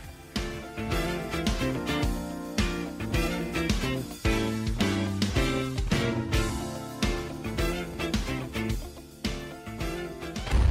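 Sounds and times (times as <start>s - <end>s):
1980s Spanish pop rock song with driving drums and full band: 0.0s - 10.6s.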